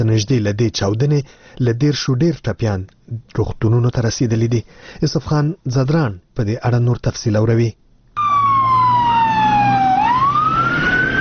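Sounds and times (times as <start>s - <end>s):
speech: 0.0s - 7.8s
emergency siren of fire engines and ambulances wailing in Kabul after a suicide bombing: 8.2s - 11.2s.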